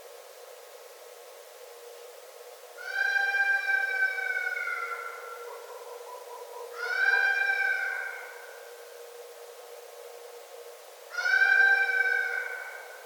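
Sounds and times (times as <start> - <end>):
red fox calling: 2.8 - 8.5, 11.1 - 12.9.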